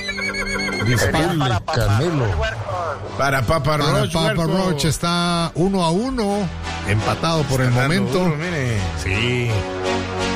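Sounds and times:
horse neigh sound effect: 0.0 - 1.2
speech: 0.8 - 10.2.

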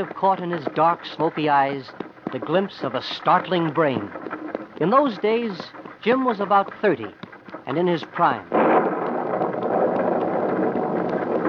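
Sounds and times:
speech: 0.0 - 8.6
stormy wind: 0.0 - 11.4
rumbling thunder in a thunderstorm: 8.5 - 11.4.

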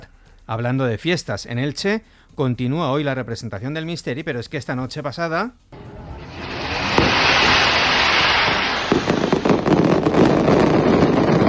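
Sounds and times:
speech: 0.5 - 5.8
large aerial palm-shaped firework burst hissing: 5.8 - 11.4.

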